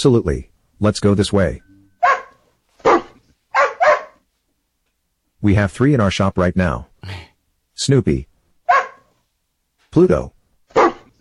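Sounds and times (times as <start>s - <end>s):
speech: 0.0s - 1.7s, 5.4s - 8.3s, 10.0s - 10.9s
dog barking: 2.0s - 4.2s, 8.6s - 9.2s, 10.7s - 11.2s.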